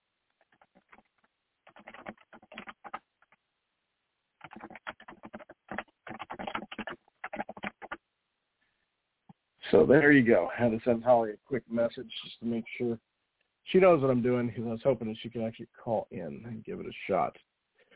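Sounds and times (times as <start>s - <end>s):
clicking of computer keyboard typing: 0.4s - 3.4s, 4.4s - 8.0s
speech: 9.8s - 13.1s, 13.7s - 17.5s.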